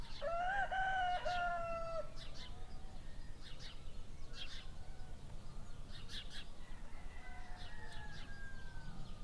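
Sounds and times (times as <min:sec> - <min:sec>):
rooster crowing in the early morning: 0:00.2 - 0:02.2, 0:06.6 - 0:09.1.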